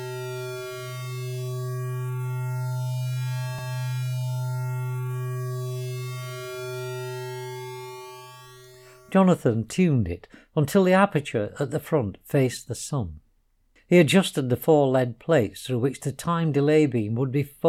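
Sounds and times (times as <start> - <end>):
faint slow sweeping tones: 0.0 - 9.1
gentle electronic hum of a machine: 0.0 - 9.2
speech: 9.1 - 13.2, 13.9 - 17.6.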